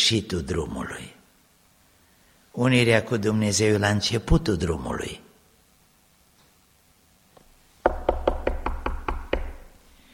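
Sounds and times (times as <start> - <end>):
speech: 0.1 - 1.2, 2.6 - 5.3
firm knocks on a wooden door: 7.8 - 9.7.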